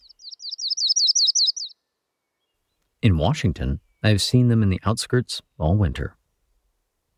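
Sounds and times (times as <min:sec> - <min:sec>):
yellow-rumped warbler sharp chirping notes: 0:00.0 - 0:02.8
speech: 0:03.0 - 0:06.2.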